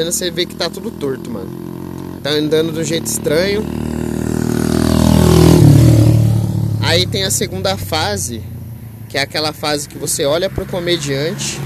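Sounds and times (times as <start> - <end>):
speech: 0.0 - 4.2, 6.9 - 11.6
loud traffic rumble of passing cars: 0.0 - 11.6
motorcycle engine droning and shifting pitch: 0.0 - 11.6.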